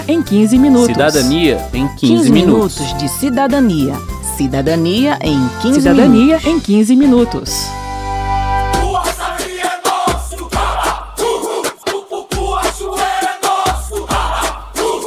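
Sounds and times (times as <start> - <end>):
speech: 0.1 - 7.7
short sustained tone: 2.0 - 2.8, 5.7 - 6.6
big crowd of sports fans roaring and chanting: 8.7 - 15.0.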